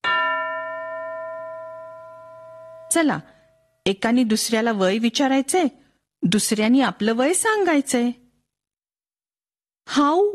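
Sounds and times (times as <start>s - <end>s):
bell strike signalling a classroom speaking exercise: 0.0s - 3.8s
speech: 2.9s - 8.2s, 9.9s - 10.3s.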